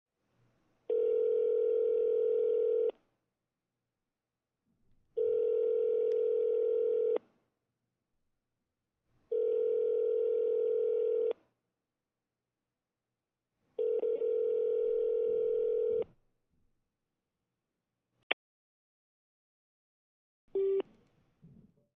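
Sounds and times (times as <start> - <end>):
cell telephone ringing through speaker: 0.9 - 2.9, 5.2 - 7.2, 9.3 - 11.4, 13.8 - 16.1.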